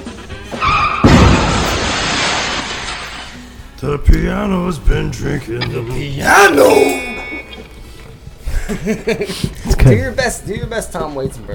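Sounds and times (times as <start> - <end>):
long noisy rumble of crash debris: 0.0 - 3.5
car tire squeal: 0.5 - 1.1
loud crunching car crash impact: 0.5 - 3.4
speech: 3.8 - 7.1, 8.7 - 11.5
laughter: 8.4 - 9.7.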